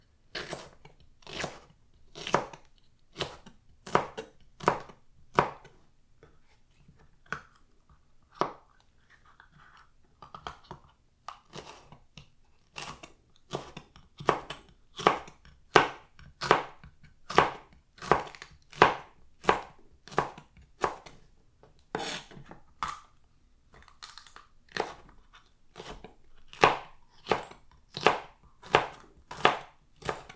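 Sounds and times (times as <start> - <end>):
green pepper being cut: 0.3 - 5.7, 8.4 - 21.2, 21.9 - 23.2, 23.8 - 30.3.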